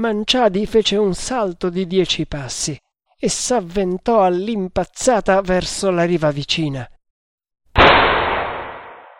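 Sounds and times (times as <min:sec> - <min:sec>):
speech: 0:00.0 - 0:07.0
gunshot at night near a river: 0:07.8 - 0:09.1.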